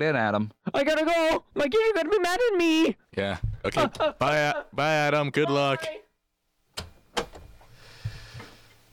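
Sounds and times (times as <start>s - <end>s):
speech: 0.0s - 6.0s
door opening and shutting: 6.7s - 8.5s.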